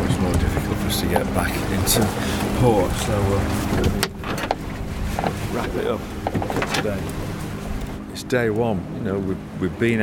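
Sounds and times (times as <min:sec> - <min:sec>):
rushing wind on a rough sea: 0:00.0 - 0:08.1
small single-engine boat engine droning on a rough sea: 0:00.0 - 0:10.0
water noise of a rough sea: 0:00.0 - 0:10.0
speech: 0:01.0 - 0:04.2, 0:05.5 - 0:07.3, 0:08.2 - 0:10.0.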